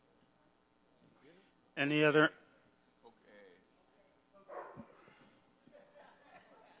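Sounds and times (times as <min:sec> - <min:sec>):
speech: 0:01.8 - 0:02.4
dog barking: 0:04.5 - 0:05.0
laughter: 0:05.6 - 0:06.7.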